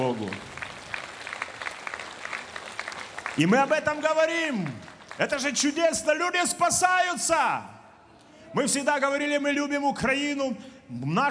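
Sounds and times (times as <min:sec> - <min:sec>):
speech: 0:00.0 - 0:00.6, 0:03.4 - 0:07.8, 0:08.5 - 0:11.2
applause from a congregation at a church service: 0:00.0 - 0:06.1.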